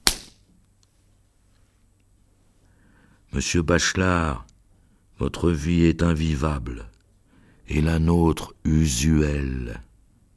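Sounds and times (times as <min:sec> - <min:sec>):
slap to the face: 0:00.0 - 0:00.4
speech: 0:03.3 - 0:04.5, 0:05.2 - 0:06.9, 0:07.7 - 0:09.9.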